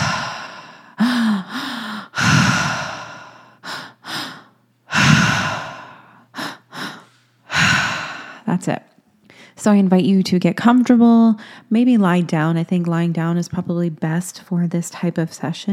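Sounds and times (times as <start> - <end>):
breathwork mouth breathing: 0.0 - 8.4
speech: 8.6 - 8.9, 9.6 - 15.7.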